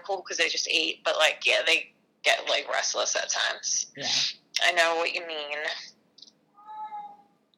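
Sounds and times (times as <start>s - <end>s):
speech: 0.1s - 6.0s
cat meowing: 6.6s - 7.3s.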